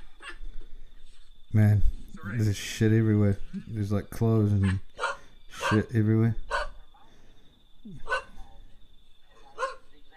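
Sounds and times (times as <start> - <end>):
speech: 1.5 - 4.9, 5.6 - 6.4, 7.8 - 8.1
dog barking: 4.6 - 5.9, 6.5 - 6.8, 8.0 - 8.4, 9.4 - 9.9.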